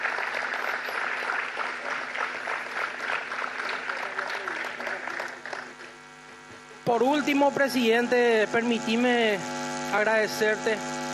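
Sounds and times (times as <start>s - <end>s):
audience applause: 0.0s - 6.0s
speech: 6.9s - 11.0s.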